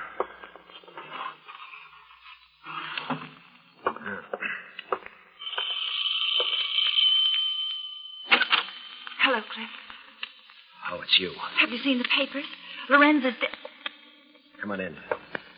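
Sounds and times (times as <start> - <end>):
shrill doorbell ringing: 5.4 - 10.3
speech: 9.4 - 9.8, 11.1 - 13.7, 14.6 - 15.2.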